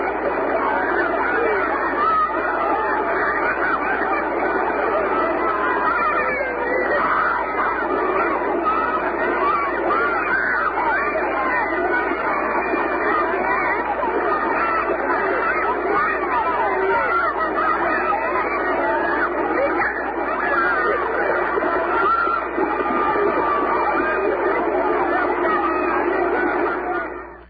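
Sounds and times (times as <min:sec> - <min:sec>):
laughter: 0:00.0 - 0:27.4
lively crowd of people chattering at a beach: 0:00.0 - 0:27.4.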